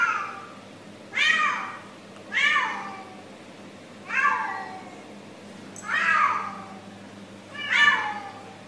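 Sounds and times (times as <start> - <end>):
cat yowling inside an apartment, heard through the front door: 1.2 - 3.2, 4.1 - 5.0, 5.8 - 6.8, 7.5 - 8.6.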